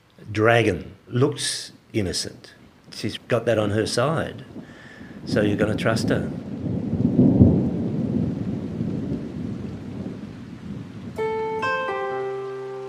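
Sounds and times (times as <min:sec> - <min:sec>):
steady rain: 0:00.0 - 0:12.8
speech: 0:00.4 - 0:06.5
deep roll of thunder: 0:04.3 - 0:11.4
sustained musical tones: 0:11.2 - 0:12.8.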